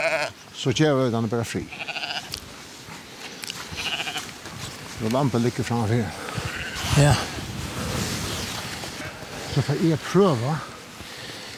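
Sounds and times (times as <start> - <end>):
lamb bleating: 0.0 - 0.4, 1.6 - 2.4, 3.7 - 4.3, 6.4 - 7.0
speech: 0.2 - 2.0, 5.0 - 6.2, 6.9 - 7.4, 9.6 - 10.7.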